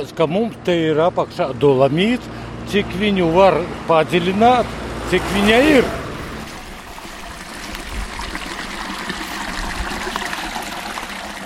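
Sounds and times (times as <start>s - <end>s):
speech: 0.0s - 6.0s
small stream trickling and babbling: 4.2s - 11.4s.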